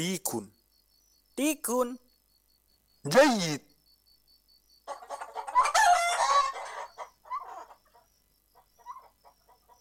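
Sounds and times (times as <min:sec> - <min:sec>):
speech: 0:00.0 - 0:00.6, 0:01.4 - 0:02.0, 0:03.0 - 0:03.7
chickens clucking: 0:04.8 - 0:09.7
rooster crowing: 0:04.9 - 0:07.8.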